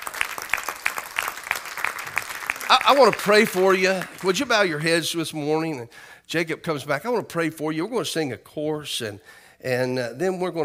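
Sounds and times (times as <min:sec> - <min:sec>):
scattered applause from the crowd: 0:00.0 - 0:04.9
congregation clapping hands in rhythm: 0:00.0 - 0:05.0
speech: 0:02.7 - 0:10.6.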